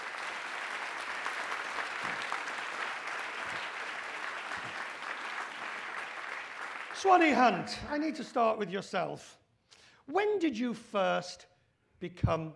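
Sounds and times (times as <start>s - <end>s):
large audience applauding a panel: 0.0s - 7.7s
speech: 7.0s - 9.4s, 10.1s - 12.5s.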